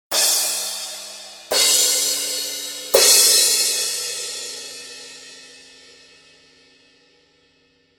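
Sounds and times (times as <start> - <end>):
Paiste crash cymbals: 0.1 - 6.4.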